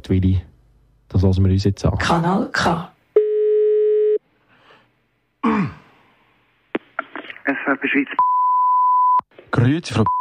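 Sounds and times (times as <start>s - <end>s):
speech: 0.0s - 0.5s, 1.1s - 2.9s, 5.4s - 5.8s, 7.5s - 8.3s, 9.5s - 10.1s
telephone ringing tone of an outgoing call: 3.2s - 4.2s.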